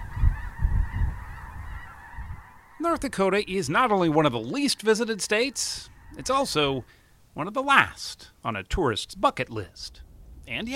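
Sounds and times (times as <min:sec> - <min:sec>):
flock of geese honking as they fly over: 0:00.0 - 0:08.2
speech: 0:02.8 - 0:10.7.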